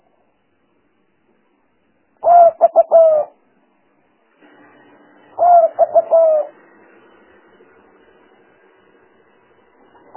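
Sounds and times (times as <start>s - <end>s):
spotted dove cooing lure for trapping: 2.2s - 3.4s, 5.4s - 6.6s.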